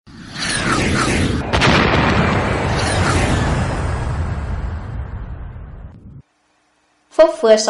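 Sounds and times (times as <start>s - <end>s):
heavy artillery explosions shelling an airfield at night: 0.6s - 6.2s
speech: 7.2s - 7.6s.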